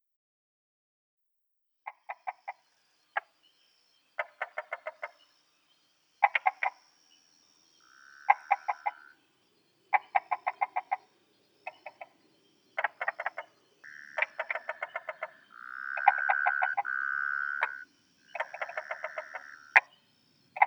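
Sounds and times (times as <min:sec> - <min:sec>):
tree frog calls in Taiwan: 0:01.9 - 0:03.3, 0:04.2 - 0:05.3, 0:06.2 - 0:07.0, 0:07.8 - 0:09.2, 0:09.9 - 0:20.6.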